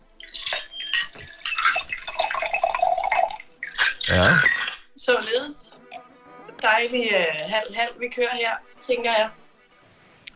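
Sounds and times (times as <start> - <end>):
sparkling water and spirits pouring into a chilled wine glass: 1.3 - 4.0
speech: 4.1 - 4.5, 6.6 - 9.4.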